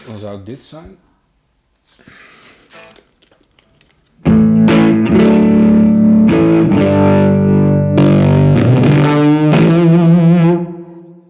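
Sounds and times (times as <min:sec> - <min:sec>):
speech: 0:00.0 - 0:01.1
loud heavily distorted electric guitar through a tube amp: 0:04.2 - 0:11.2.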